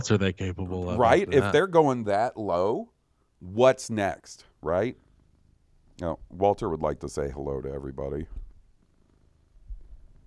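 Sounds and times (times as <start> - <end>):
speech: 0.0 - 5.0, 6.0 - 8.4
cat purring: 5.0 - 10.2.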